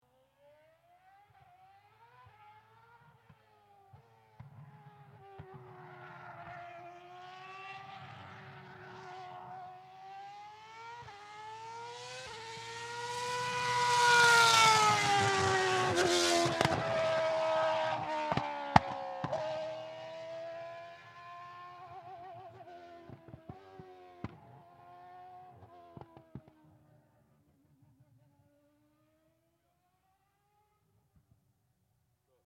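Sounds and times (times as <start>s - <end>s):
Mercedes Petronas W02 F1 car accelerating and downshifting while passing by: 0.1s - 31.3s.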